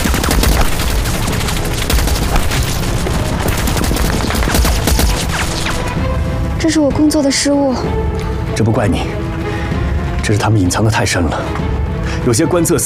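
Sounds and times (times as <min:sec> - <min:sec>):
anti-aircraft heavy machine gun firing horizontally: 0:00.0 - 0:06.0
speech: 0:06.6 - 0:09.2, 0:10.3 - 0:12.8.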